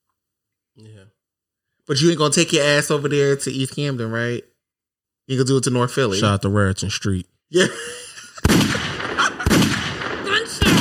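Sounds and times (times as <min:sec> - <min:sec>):
speech: 0:00.8 - 0:01.2, 0:01.9 - 0:04.5, 0:05.3 - 0:08.5
laughter: 0:07.5 - 0:08.5, 0:09.1 - 0:09.6
gunshots: 0:08.4 - 0:10.7.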